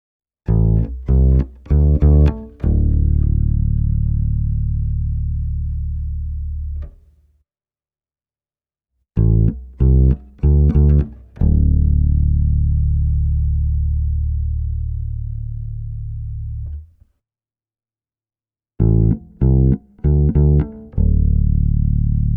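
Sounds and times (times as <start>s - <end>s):
6-string bass guitar: 0.5s - 7.1s, 9.2s - 16.9s, 18.8s - 22.3s.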